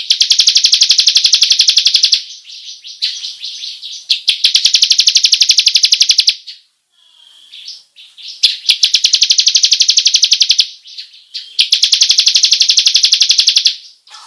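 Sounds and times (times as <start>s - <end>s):
bar-winged prinia pouring out long rolling trills: 0.0s - 6.6s, 7.2s - 14.2s.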